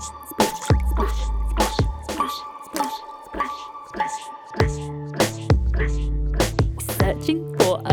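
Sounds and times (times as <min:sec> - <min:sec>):
sustained musical backing: 0:00.0 - 0:07.9
wet splashing and squishing steps through a stream: 0:00.4 - 0:03.2.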